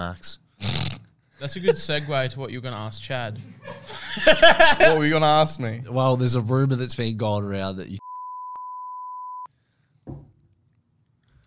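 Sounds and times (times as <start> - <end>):
speech: 0.0 - 0.4, 1.4 - 8.0
laughter: 1.4 - 2.2, 3.3 - 5.2
censor bleep tone: 8.0 - 9.5
low thump: 10.0 - 10.4.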